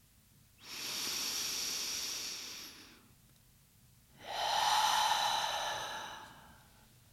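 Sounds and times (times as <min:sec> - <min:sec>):
long airy exhale during a guided breathing exercise: 0:00.6 - 0:03.1, 0:04.2 - 0:06.8
long deep inhale through the mouth during a guided breathing exercise: 0:00.6 - 0:03.1, 0:04.2 - 0:06.8.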